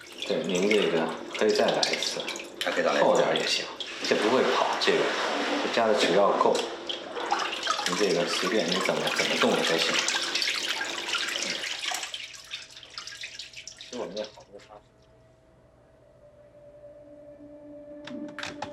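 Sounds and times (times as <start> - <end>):
water draining through a papermaking mesh holding pulp: 0.0 - 14.6
speech: 0.3 - 6.8, 7.9 - 10.2.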